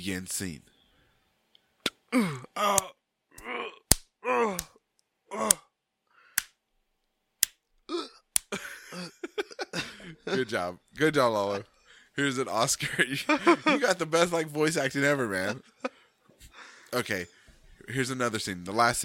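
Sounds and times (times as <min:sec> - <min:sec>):
speech: 0:00.0 - 0:00.7, 0:02.1 - 0:03.0, 0:10.3 - 0:16.0, 0:16.9 - 0:19.0
man acting pained groans and grunts as if held in a headlock: 0:02.1 - 0:05.8, 0:07.9 - 0:08.2
laughter: 0:08.5 - 0:10.7, 0:12.8 - 0:14.1.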